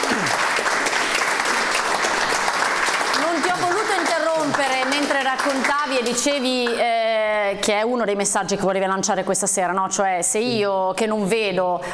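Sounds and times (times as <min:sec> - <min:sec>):
crowd applauding: 0:00.0 - 0:07.0
speech: 0:04.6 - 0:11.9.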